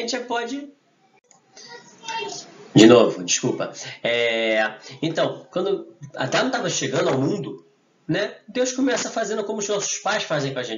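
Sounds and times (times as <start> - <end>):
speech: 0.0 - 0.8, 1.6 - 10.7
children yelling in the background: 1.1 - 2.7.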